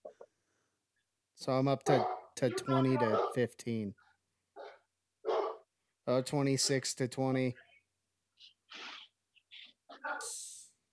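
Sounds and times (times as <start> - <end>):
speech: 1.4 - 4.0, 6.1 - 7.6
dog barking: 1.9 - 3.4, 4.6 - 5.7.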